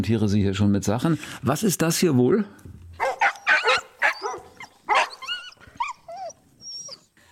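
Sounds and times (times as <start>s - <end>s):
speech: 0.0s - 2.8s
several dogs barking: 3.0s - 6.9s.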